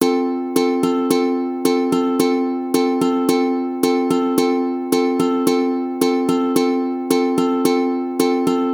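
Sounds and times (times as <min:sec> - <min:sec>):
slowed ukulele rhythms: 0:00.0 - 0:08.7.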